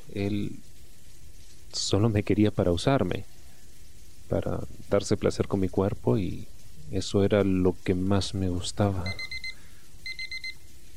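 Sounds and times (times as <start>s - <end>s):
speech: 0.2s - 0.7s, 1.7s - 3.3s, 4.3s - 9.3s
alarm clock with high-pitched electronic beeps: 9.0s - 10.9s.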